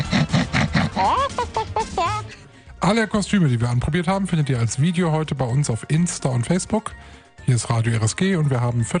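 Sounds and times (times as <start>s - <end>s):
person imitating a pig grunting and squealing: 0.0s - 2.3s
speech: 2.8s - 8.9s.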